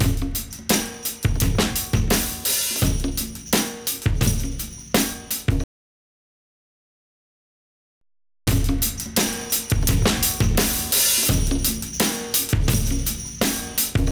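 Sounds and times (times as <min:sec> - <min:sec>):
driving drums: 0:00.0 - 0:05.6, 0:08.5 - 0:14.1.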